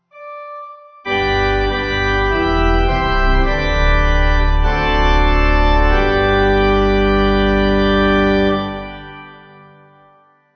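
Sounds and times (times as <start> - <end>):
pipe organ at a morning gospel service: 0.2 - 10.1.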